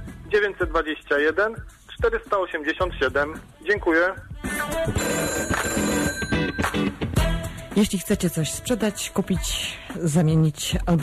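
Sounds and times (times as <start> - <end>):
speech: 0.3 - 5.8, 7.8 - 11.0
telephone ringing for an incoming call: 4.9 - 7.0.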